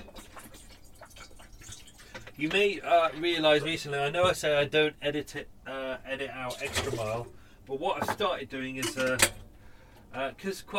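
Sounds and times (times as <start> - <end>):
water poured while making coffee: 0.0 - 2.4, 6.5 - 7.3
low noise: 0.0 - 10.7
speech: 2.4 - 9.4, 10.1 - 10.7.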